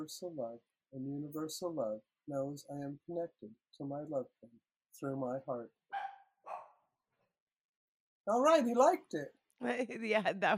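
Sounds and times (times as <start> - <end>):
speech: 0.0 - 5.8, 8.2 - 10.5
dog barking: 5.9 - 6.8.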